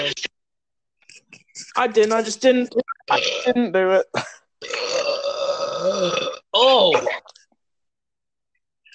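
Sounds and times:
speech: 0:01.8 - 0:04.3, 0:05.8 - 0:07.4
long loud throaty burp: 0:03.1 - 0:03.6, 0:04.2 - 0:07.3.

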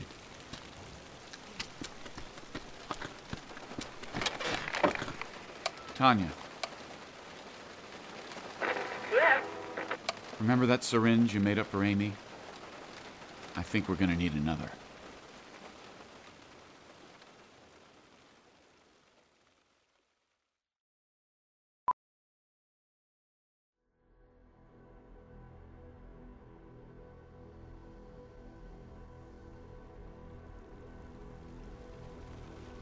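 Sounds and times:
steady rain hissing: 0:00.0 - 0:20.1, 0:29.6 - 0:32.7
heavier deeper downpour: 0:00.0 - 0:20.3, 0:29.2 - 0:32.7
speech: 0:06.0 - 0:06.4, 0:10.4 - 0:12.2, 0:13.6 - 0:14.8.

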